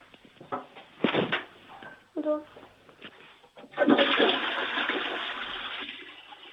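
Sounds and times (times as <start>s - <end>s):
toilet flushing with swirling water: 3.6s - 6.5s.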